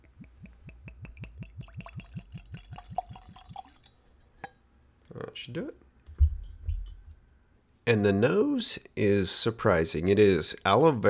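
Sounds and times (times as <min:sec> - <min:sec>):
liqueur glugging from a bottle into a nosing glass: 0:00.9 - 0:04.6
liqueur dripping: 0:00.9 - 0:05.2
faint glassy clink of a nosing glass: 0:01.6 - 0:04.6
speech: 0:05.4 - 0:05.8, 0:07.9 - 0:11.0.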